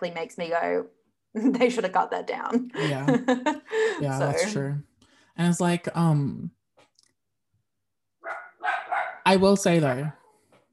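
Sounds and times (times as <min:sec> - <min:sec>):
speech: 0:00.0 - 0:06.6, 0:08.6 - 0:10.2
laughter: 0:02.8 - 0:04.5
dog barking: 0:08.2 - 0:09.3.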